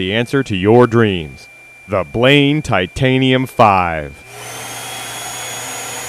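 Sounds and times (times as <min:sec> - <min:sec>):
speech: 0:00.0 - 0:04.6
canister vacuum cleaner running: 0:01.4 - 0:06.0.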